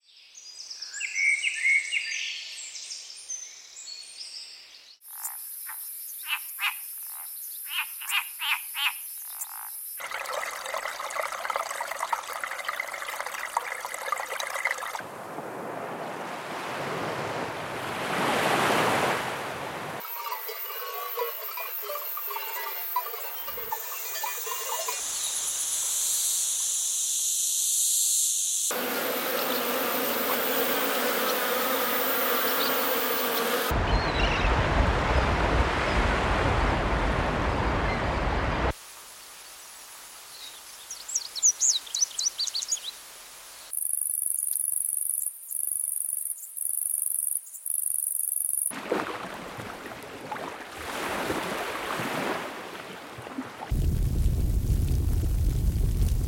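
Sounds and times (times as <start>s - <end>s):
wilderness nature ambience: 0.0s - 56.2s.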